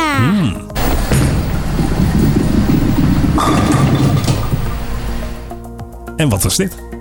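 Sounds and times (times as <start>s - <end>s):
bowling ball rumbling down a lane: 0.8s - 5.6s
speech: 6.2s - 6.9s.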